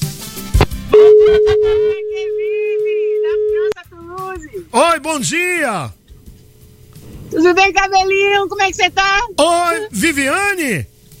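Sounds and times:
steady electronic telephone tone ringing: 0.9 - 3.7
speech: 4.8 - 6.0, 7.3 - 10.9.

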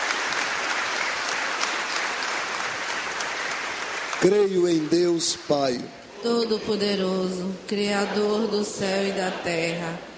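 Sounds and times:
audience applause: 0.0 - 5.8
speech: 4.2 - 10.1.

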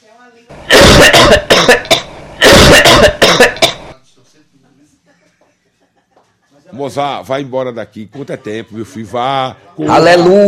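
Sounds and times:
woman coughing harsh hacking coughs: 0.7 - 3.9
speech: 6.8 - 10.4.

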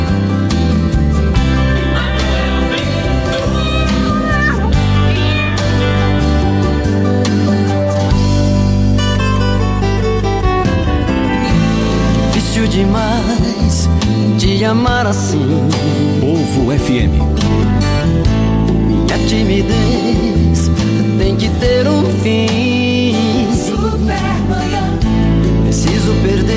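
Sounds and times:
loud steady music with a strong beat: 0.0 - 26.5
kitten meowing: 2.0 - 6.7
speech: 14.7 - 15.9.

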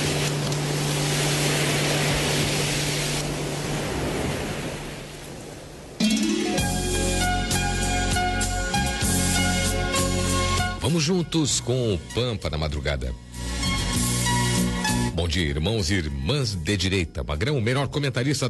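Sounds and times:
low droning hum: 0.0 - 6.0
strong coastal wind roaring: 0.0 - 6.0
music: 6.0 - 18.4
speech: 11.0 - 13.3, 15.2 - 18.4.

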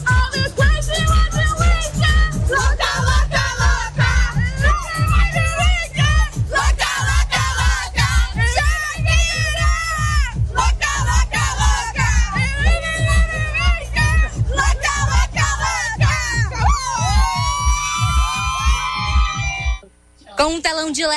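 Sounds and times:
regular pulsing beats: 0.0 - 19.8
huge concert crowd shouting and chanting in unison: 2.5 - 5.5, 6.5 - 8.4, 10.5 - 17.5.

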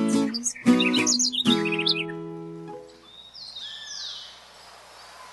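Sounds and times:
birds chirping and singing: 0.1 - 2.3, 3.0 - 5.3
tuneful sustained melodic sound: 0.1 - 3.0.

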